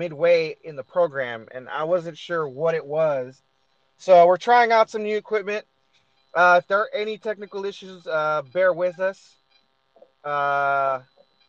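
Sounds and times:
speech: 0:00.0 - 0:05.7, 0:06.3 - 0:09.4, 0:10.2 - 0:11.1
faint steady electrical drone: 0:00.0 - 0:11.4
phone-charging power converter humming: 0:00.0 - 0:11.4.

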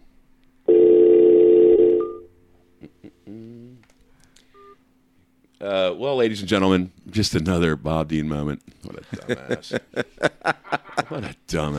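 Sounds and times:
telephone dial tone while calling someone back: 0:00.7 - 0:02.2
laughter: 0:02.8 - 0:03.8, 0:08.8 - 0:11.7
speech: 0:05.7 - 0:11.7.

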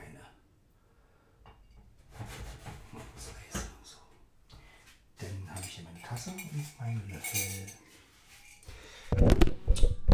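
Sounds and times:
upright camera tipping over and tumbling: 0:09.2 - 0:10.1.

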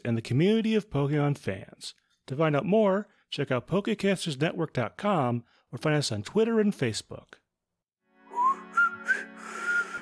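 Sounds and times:
speech: 0:00.0 - 0:07.4
person attempting to whistle with breathy sputtering bursts: 0:08.3 - 0:09.9.

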